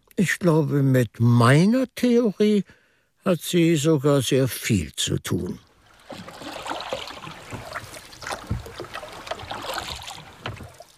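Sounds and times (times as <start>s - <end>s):
speech: 0.2s - 6.3s
water splashing and lapping from a boat moving past a low wall by a riverbank: 5.6s - 10.9s.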